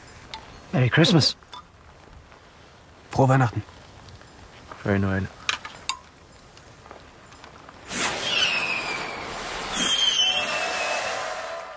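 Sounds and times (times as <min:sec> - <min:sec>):
speech: 0:00.7 - 0:01.5, 0:03.2 - 0:03.7, 0:04.8 - 0:05.4
flares going off in hissing bursts with falling whistle: 0:07.8 - 0:11.7.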